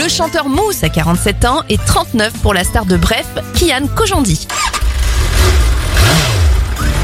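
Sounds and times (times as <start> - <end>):
speech: 0.1 - 4.7
motorcycle engine cranking to life: 4.3 - 7.0.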